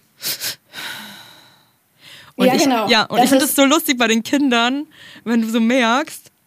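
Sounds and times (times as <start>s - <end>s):
person taking quick nasal inhales and a long slow calming exhale: 0.2s - 2.4s
speech: 2.4s - 6.3s.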